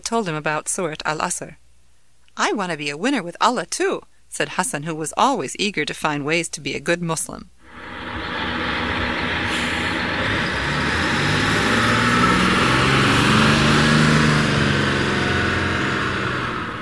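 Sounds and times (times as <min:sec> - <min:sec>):
speech: 0:00.1 - 0:01.6, 0:02.4 - 0:08.0
road roar: 0:07.6 - 0:16.8
bus engine rumble pulling up at a bus stop: 0:07.7 - 0:16.8.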